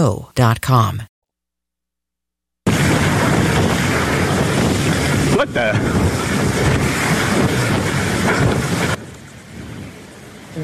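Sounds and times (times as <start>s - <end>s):
speech: 0.0s - 1.1s, 5.4s - 6.2s
ocean surf at a beach: 2.7s - 10.6s.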